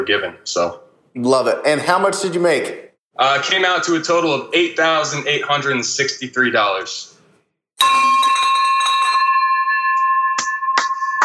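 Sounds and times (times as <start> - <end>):
speech: 0.0 - 7.1, 7.8 - 8.3
bright bell struck and ringing: 7.8 - 11.2.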